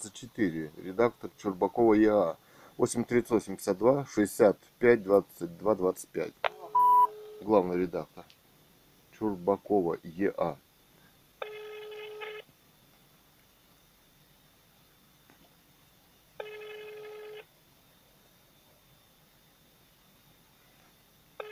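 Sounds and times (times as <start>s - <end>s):
speech: 0.0s - 6.6s, 7.4s - 8.3s, 9.2s - 10.6s
quiet hissy telephone line: 0.0s - 8.2s, 9.0s - 21.5s
telephone ringing tone from a call to a company: 6.5s - 7.5s, 11.4s - 12.5s, 16.4s - 17.5s.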